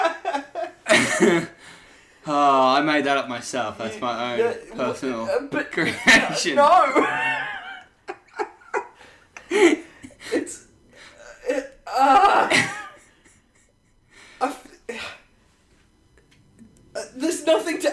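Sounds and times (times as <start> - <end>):
wheezing honking laughter: 0.0 - 1.9, 6.2 - 14.4
speech: 1.2 - 1.6, 2.2 - 7.4, 9.5 - 9.8, 17.5 - 17.9.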